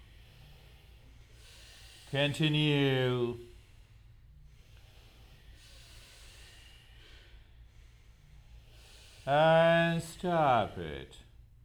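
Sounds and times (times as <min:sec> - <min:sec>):
long hissing exhale during breathing exercise: 0:00.0 - 0:02.2, 0:03.4 - 0:09.9
low constant hum: 0:00.0 - 0:11.6
speech: 0:02.1 - 0:03.5, 0:09.3 - 0:11.2.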